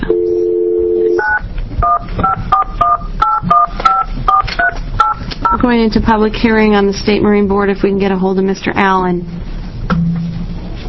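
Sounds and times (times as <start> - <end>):
steady low telephone dial tone: 0.0 - 2.0
short two-pitch telephone keypad beeps: 0.0 - 5.6
faint noise: 0.0 - 10.8
speech: 5.7 - 9.4.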